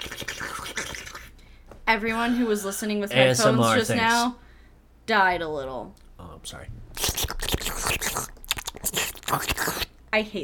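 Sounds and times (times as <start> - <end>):
wet mouth sounds with smacking, slurping and clicking: 0.0 - 1.4, 6.9 - 10.0
speech: 1.9 - 4.4, 5.1 - 6.8, 9.3 - 10.4.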